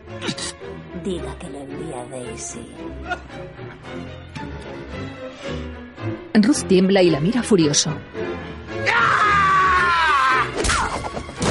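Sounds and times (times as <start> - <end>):
speech: 1.0 - 9.3
loud drawn-out strained scream: 8.8 - 10.6.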